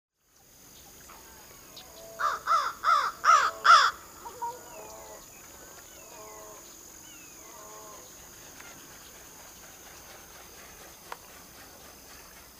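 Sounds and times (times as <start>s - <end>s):
bird cawing in Northern Illinois: 2.2s - 5.2s.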